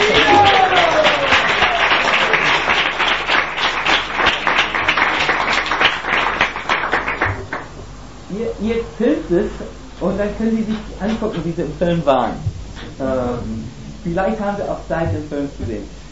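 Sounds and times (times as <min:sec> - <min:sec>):
audience applause welcoming a guest: 0:00.0 - 0:07.7
speech: 0:09.3 - 0:16.1.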